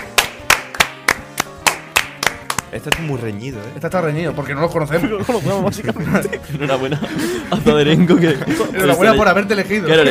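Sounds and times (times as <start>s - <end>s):
audience clapping at an award vote: 0.0s - 3.1s
speech: 2.7s - 10.0s
laughter: 4.9s - 9.3s.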